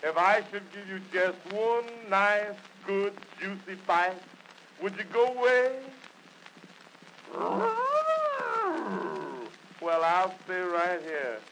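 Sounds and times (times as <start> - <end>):
speech: 0.0 - 6.0, 7.3 - 7.9, 9.8 - 11.4
bear growling: 7.3 - 9.6.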